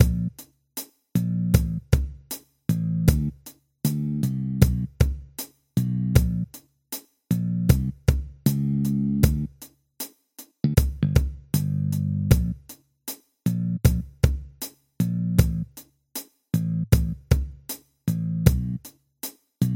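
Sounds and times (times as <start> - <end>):
bass tracks: 0.0 - 0.4, 1.2 - 5.2, 5.8 - 6.6, 7.3 - 9.6, 10.6 - 12.7, 13.5 - 14.4, 15.0 - 15.8, 16.5 - 17.5, 18.1 - 18.9, 19.6 - 19.7.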